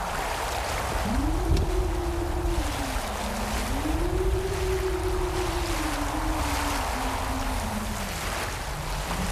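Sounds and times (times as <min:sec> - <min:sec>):
crashing waves of a rough stormy sea: 0:00.0 - 0:09.3
gusting storm wind: 0:00.0 - 0:09.3
low howling tone: 0:00.0 - 0:09.3.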